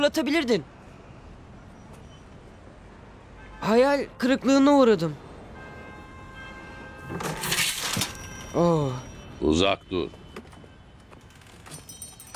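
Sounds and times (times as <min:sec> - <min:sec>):
speech: 0:00.0 - 0:00.8, 0:03.6 - 0:05.2, 0:08.5 - 0:10.2
door snapping and breaking apart: 0:07.1 - 0:08.3.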